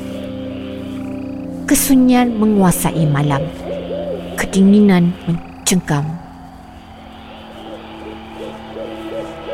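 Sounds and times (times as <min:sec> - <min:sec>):
owl hooting: 0:00.0 - 0:09.5
speech: 0:01.7 - 0:03.6, 0:04.5 - 0:06.2.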